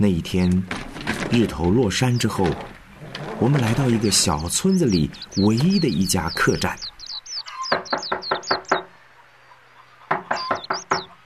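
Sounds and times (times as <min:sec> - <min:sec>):
speech: 0:00.0 - 0:02.7, 0:03.4 - 0:06.9
loud knocking on the wooden door of a village inn: 0:07.7 - 0:08.9, 0:10.1 - 0:11.1.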